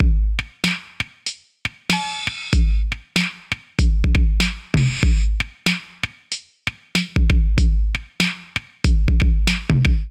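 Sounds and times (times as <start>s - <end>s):
808 drum kit beat at 95 bpm: 0.0s - 10.0s.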